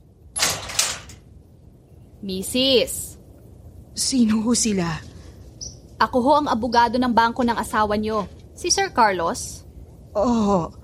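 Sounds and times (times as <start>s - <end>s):
door opening with scraping sweep: 0.4s - 1.2s
speech: 2.2s - 3.1s, 4.0s - 5.1s, 6.0s - 10.8s.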